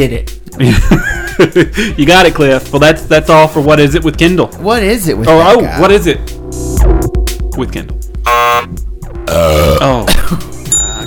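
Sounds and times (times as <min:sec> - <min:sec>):
speech: 0:00.0 - 0:10.5
loud drawn-out croaking belch: 0:09.1 - 0:10.3.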